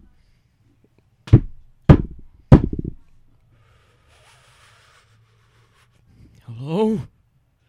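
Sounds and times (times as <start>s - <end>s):
heavy bangs on a wooden door: 1.3s - 3.0s
speech: 6.7s - 7.1s.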